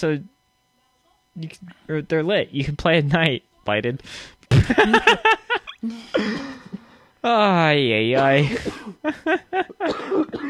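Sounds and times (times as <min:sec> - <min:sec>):
speech: 0:00.0 - 0:00.4, 0:01.4 - 0:10.4
laughter: 0:04.5 - 0:07.0, 0:08.2 - 0:09.9
cat coughing and hacking: 0:06.2 - 0:06.8, 0:08.2 - 0:09.0, 0:09.6 - 0:10.4.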